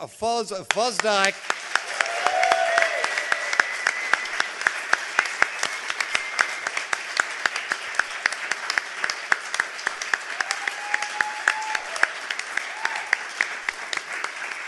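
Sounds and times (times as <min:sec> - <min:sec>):
speech: 0:00.0 - 0:01.6
audience applause: 0:00.7 - 0:14.6
faint voices and whoops: 0:01.9 - 0:04.4, 0:10.4 - 0:13.2.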